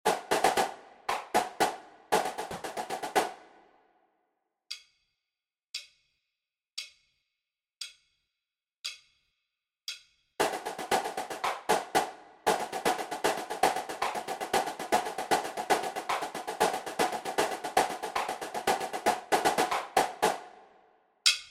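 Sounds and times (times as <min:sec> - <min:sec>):
snare drum cadence: 0:00.0 - 0:03.7, 0:10.4 - 0:20.7.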